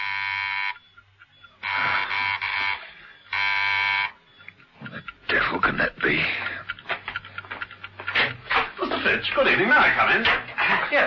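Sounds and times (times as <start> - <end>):
electric door buzzer at a clockmaker's workshop ringing in a coded pattern: 0.0 - 0.8, 1.6 - 4.2
faint low hum: 0.0 - 10.7
speech: 9.2 - 11.0.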